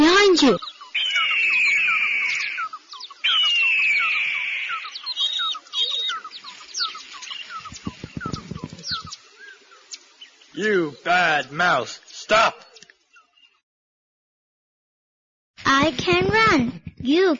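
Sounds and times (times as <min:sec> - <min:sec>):
eagle screeching: 0:00.3 - 0:07.4
speech: 0:00.4 - 0:00.7, 0:10.6 - 0:12.6, 0:15.9 - 0:17.3.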